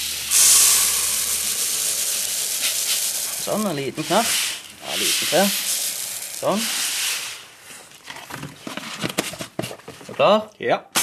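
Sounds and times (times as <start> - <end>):
small white fertilizer pellets pouring into a blender: 0.0 - 7.6
speech: 3.4 - 4.4, 5.0 - 5.6, 6.4 - 6.8, 10.2 - 10.9.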